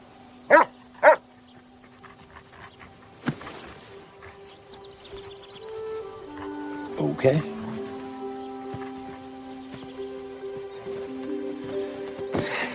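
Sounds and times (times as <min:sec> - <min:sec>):
chorus of crickets: 0:00.0 - 0:12.7
dog barking: 0:00.5 - 0:01.2
speech: 0:07.0 - 0:07.6.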